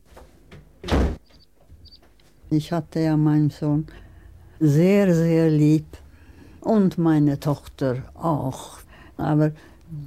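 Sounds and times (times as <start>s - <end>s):
door slamming shut: 0.8s - 1.2s
speech: 2.5s - 4.0s, 4.6s - 6.0s, 6.6s - 10.0s.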